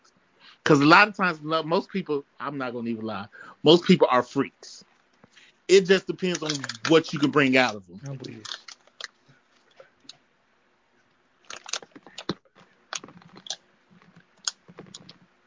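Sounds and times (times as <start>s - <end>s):
speech: 0.7s - 4.9s, 5.7s - 8.6s
mouth smacking while chewing: 8.2s - 10.2s, 11.4s - 15.2s.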